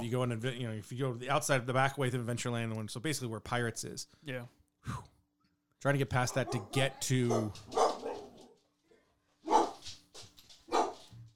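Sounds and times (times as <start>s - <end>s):
speech: 0.0s - 5.1s, 5.8s - 7.8s
dogs barking: 6.3s - 8.6s, 9.4s - 9.9s, 10.7s - 11.1s.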